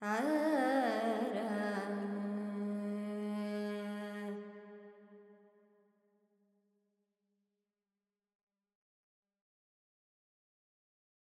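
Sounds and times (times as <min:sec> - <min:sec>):
Carnatic female alap vocal with reverb: 0:00.0 - 0:04.5.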